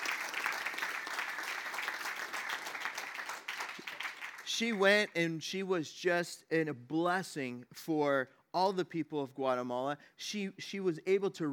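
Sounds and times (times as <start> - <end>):
audience clapping: 0.0 - 5.1
speech: 4.5 - 11.5.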